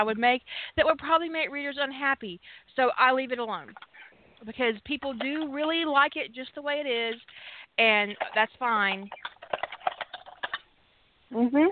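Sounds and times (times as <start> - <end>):
speech: 0.0 - 9.6, 11.3 - 11.7
finger typing on a keyboard: 8.0 - 10.6.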